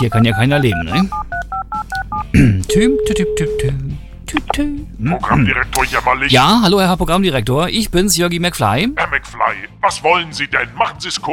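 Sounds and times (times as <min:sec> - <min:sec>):
speech: 0:00.0 - 0:01.3, 0:02.3 - 0:11.3
touch-tone beeps of a phone number being dialed: 0:00.0 - 0:03.8
held tone: 0:02.7 - 0:03.8
vocal sounds: 0:04.3 - 0:06.1.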